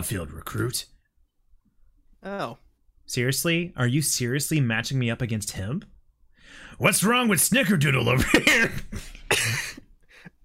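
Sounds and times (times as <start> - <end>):
speech: 0.0 - 1.0, 2.2 - 5.9, 6.5 - 9.6
person coughing harshly: 8.3 - 9.9.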